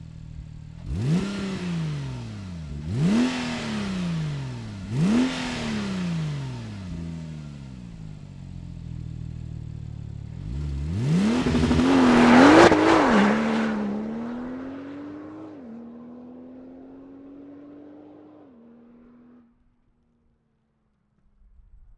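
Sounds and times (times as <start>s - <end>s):
911 turbo car engine starting: 0.0s - 18.5s.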